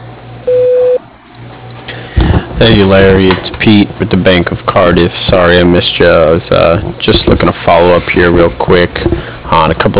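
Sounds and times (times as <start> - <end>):
voicemail recording beep: 0.5 - 1.0
speech: 2.6 - 9.9.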